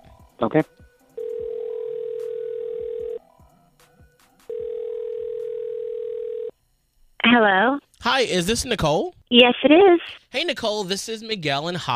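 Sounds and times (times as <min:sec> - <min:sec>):
speech: 0:00.4 - 0:00.9, 0:07.3 - 0:11.9
telephone dial tone while dialing a call: 0:01.2 - 0:03.2, 0:04.5 - 0:06.6.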